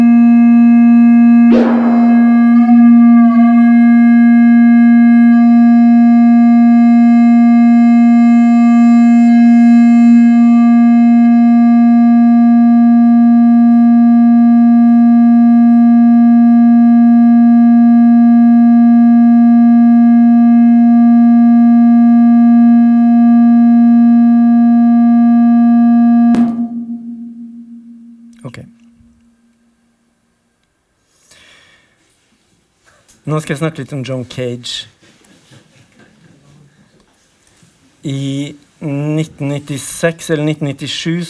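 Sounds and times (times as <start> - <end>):
steady electronic sine tone with a faintly buzzy harmonic edge: 0.0 - 30.2
speech: 33.4 - 34.9, 39.4 - 41.2.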